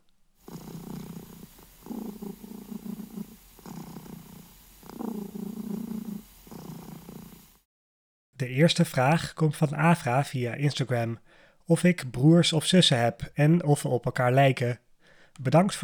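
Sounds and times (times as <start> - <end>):
cat purring: 0.0 - 7.7
speech: 8.4 - 15.8.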